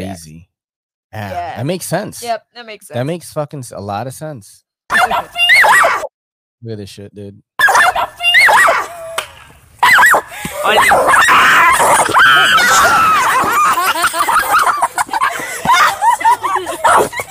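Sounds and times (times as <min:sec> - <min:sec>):
speech: 0:00.1 - 0:00.5, 0:01.1 - 0:05.5, 0:06.6 - 0:07.5, 0:10.6 - 0:13.6
small dog barking and yipping: 0:04.9 - 0:06.1, 0:07.6 - 0:09.0, 0:09.8 - 0:13.5, 0:16.7 - 0:17.2
laughter: 0:10.2 - 0:17.3.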